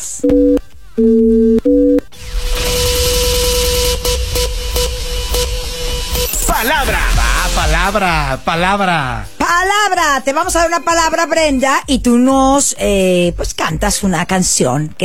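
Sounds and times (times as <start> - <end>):
speech: 0.2 - 1.3, 7.9 - 15.0
low telephone line beeps after a number is dialed: 0.2 - 2.1
noisy telephone line clamor with held tone and warbling sweeping sounds: 2.1 - 9.2.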